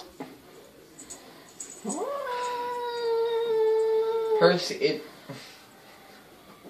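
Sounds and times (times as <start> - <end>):
speech: 1.8 - 2.1, 4.4 - 5.5
male cat yowling at his reflection in a mirror: 1.8 - 4.5.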